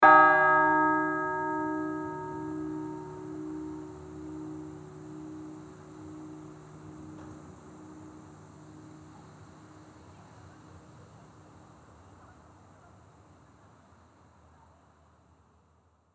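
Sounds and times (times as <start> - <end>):
untuned bell: 0.0 - 7.2.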